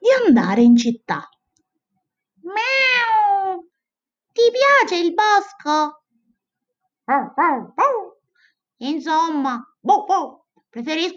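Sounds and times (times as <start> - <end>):
speech: 0.3 - 1.4, 4.4 - 6.0, 7.1 - 8.1, 8.8 - 11.1
cat meowing: 2.5 - 3.6.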